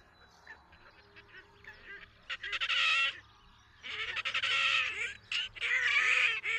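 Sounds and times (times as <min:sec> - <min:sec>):
Red-necked grebe rasping squawking calls: 0:00.8 - 0:03.2, 0:03.8 - 0:06.5.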